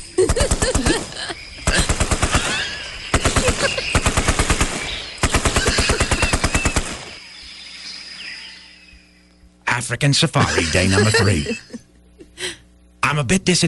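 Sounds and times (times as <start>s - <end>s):
laughter: 0.0s - 4.0s, 5.5s - 6.4s, 10.3s - 12.6s
speech: 0.2s - 0.9s, 9.9s - 11.8s, 13.1s - 13.6s
automatic gunfire from a firearm: 0.3s - 7.2s.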